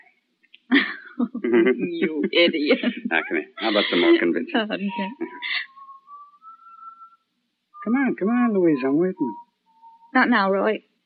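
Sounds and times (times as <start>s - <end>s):
laughter: 0.7s - 5.7s
speech: 1.5s - 5.6s, 7.9s - 9.4s, 10.1s - 10.9s
whistling: 5.0s - 10.6s.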